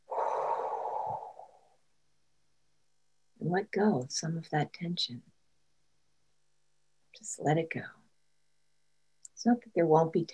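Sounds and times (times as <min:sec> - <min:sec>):
deep breath in and out during a guided relaxation exercise: 0:00.0 - 0:01.8
speech: 0:03.5 - 0:05.3, 0:07.2 - 0:08.0, 0:09.4 - 0:10.3.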